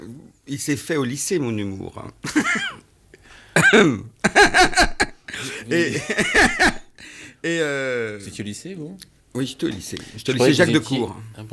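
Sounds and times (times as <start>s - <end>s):
speech: 0.5s - 2.8s, 3.6s - 6.8s, 7.4s - 11.5s
audience member coughing: 3.6s - 4.0s, 4.9s - 6.9s
voiced laugh-like sounds: 3.9s - 6.9s.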